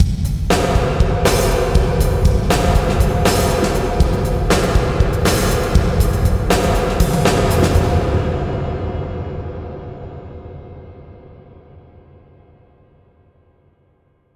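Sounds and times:
drums in a big warehouse: 0.0 - 9.8.

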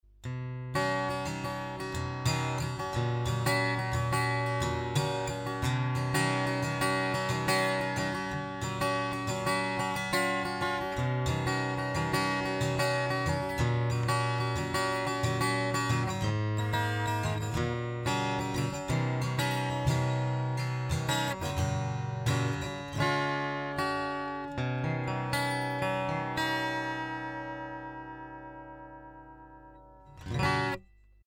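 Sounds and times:
114ce LTD acoustic guitar strumming: 0.2 - 31.2.

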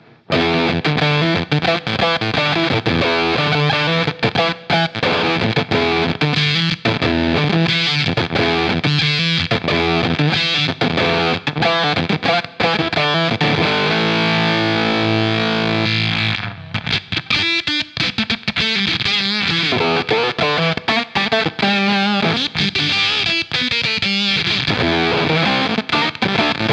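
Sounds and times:
Beetronics Abelha Tropical fuzz pedal effect: 0.0 - 26.7.

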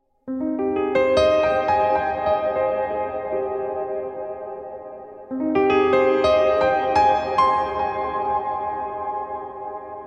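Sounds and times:
piano in a large gothic hall: 0.2 - 10.0.

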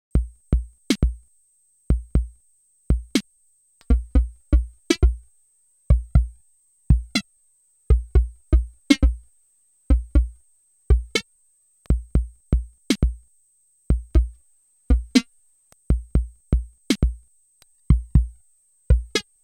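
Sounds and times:
drums with flanger effect: 0.2 - 1.2, 1.9 - 3.2, 3.9 - 5.2, 5.9 - 6.3, 6.9 - 7.2, 7.9 - 9.2, 9.9 - 10.3, 10.9 - 11.2, 11.9 - 13.2, 13.9 - 15.2, 15.9 - 17.2, 17.9 - 18.3, 18.9 - 19.2.

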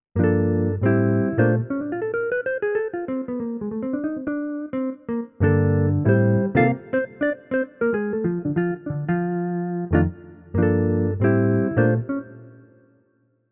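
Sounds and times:
jazz guitar: 0.2 - 12.5.

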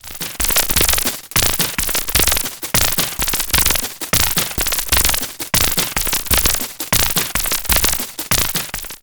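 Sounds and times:
FM synthesis beat with aliasing: 0.1 - 9.0.

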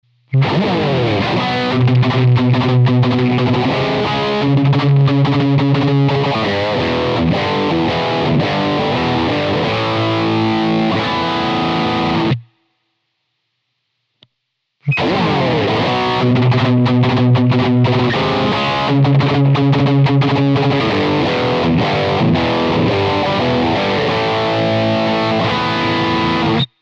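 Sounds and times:
high gain distorted guitar: 0.3 - 12.6, 14.8 - 26.7.

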